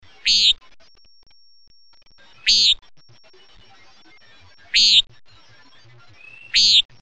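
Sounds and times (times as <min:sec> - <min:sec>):
common nighthawk buzzy nasal call: 0:00.2 - 0:00.6, 0:02.4 - 0:02.8, 0:04.7 - 0:05.0, 0:06.4 - 0:06.9.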